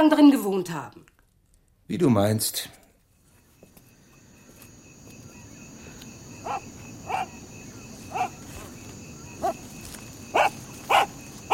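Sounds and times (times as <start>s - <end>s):
speech: 0.0s - 1.1s, 1.9s - 2.8s
dog barking: 6.4s - 7.4s, 8.1s - 8.8s, 9.4s - 9.6s, 10.3s - 11.5s.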